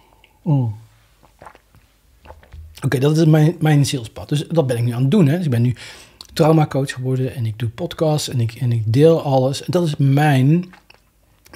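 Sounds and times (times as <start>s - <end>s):
person sipping and swallowing a drink: 0.1s - 2.9s
speech: 0.4s - 0.8s, 2.8s - 10.8s.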